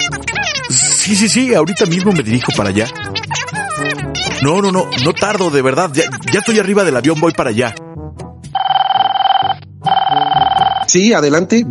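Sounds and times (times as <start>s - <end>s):
speech: 1.1s - 7.8s, 10.9s - 11.6s
telephone ringing: 8.5s - 11.0s.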